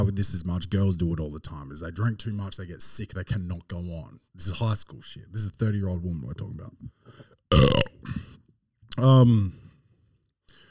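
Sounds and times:
speech: 0.0s - 8.3s, 9.0s - 9.6s
person burping into the microphone: 7.5s - 8.3s.

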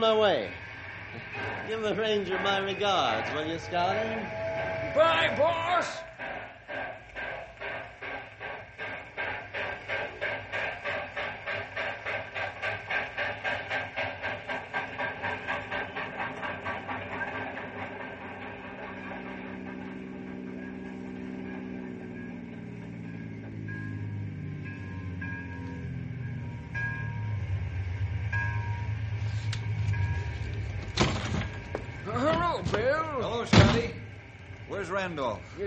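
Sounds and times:
speech: 0.0s - 4.4s, 5.0s - 6.1s, 34.9s - 35.6s
southbound train with a caboose chugging on rails: 0.0s - 35.6s.

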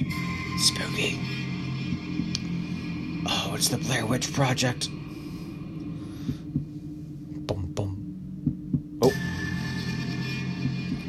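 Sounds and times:
low droning hum: 0.0s - 11.0s
speech: 0.6s - 1.4s, 3.6s - 5.0s
deep slow heartbeat sound effect: 1.9s - 2.3s, 6.2s - 9.2s, 10.6s - 11.0s.

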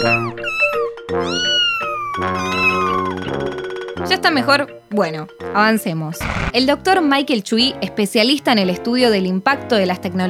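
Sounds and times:
speech: 0.0s - 1.6s, 4.1s - 10.2s
kittens meowing: 0.0s - 3.3s.

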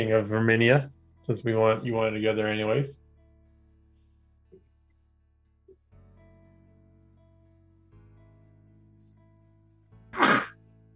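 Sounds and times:
speech: 0.0s - 3.0s
person sneezing: 10.2s - 10.6s.

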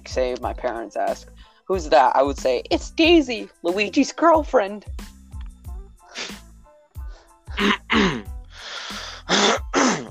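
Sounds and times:
speech: 0.1s - 5.1s, 7.6s - 8.2s
person clearing throat with rough raspy bursts: 7.6s - 8.3s, 9.3s - 10.0s.

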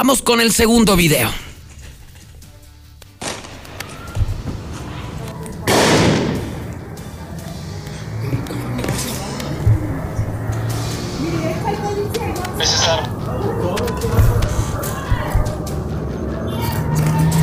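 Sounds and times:
speech: 0.0s - 1.5s
pistol gunshots fired by a young woman: 3.2s - 4.7s, 5.7s - 6.8s
steady murmur: 3.9s - 17.4s.

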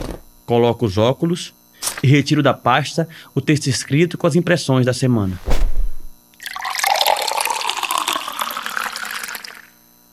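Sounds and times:
speech: 0.5s - 5.7s
water pouring into a glass in a radio broadcaster's booth: 6.4s - 9.7s.

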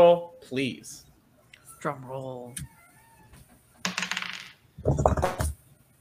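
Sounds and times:
speech: 0.0s - 1.1s, 1.8s - 2.8s, 4.8s - 5.5s
dice clattering across a hard surface: 3.8s - 5.6s.

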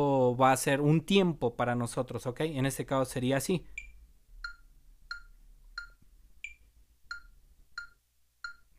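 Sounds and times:
speech: 0.0s - 3.8s
electronic metronome beeping with an accented beat: 3.8s - 8.7s.

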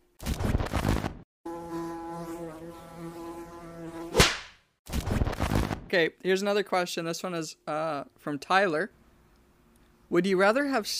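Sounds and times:
bee buzzing: 1.5s - 4.3s
sharp crack: 4.1s - 5.9s
speech: 5.9s - 9.0s, 10.1s - 10.9s.

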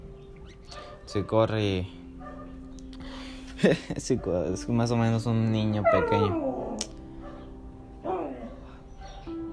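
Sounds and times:
speech: 1.1s - 2.0s, 3.6s - 6.6s
laughter: 3.6s - 4.0s
small female dog whimpering: 5.8s - 6.8s.

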